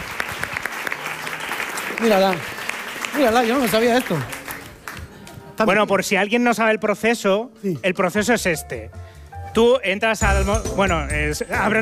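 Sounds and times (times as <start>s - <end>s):
audience applause: 0.0s - 5.3s
speech: 2.0s - 4.4s, 5.6s - 11.8s.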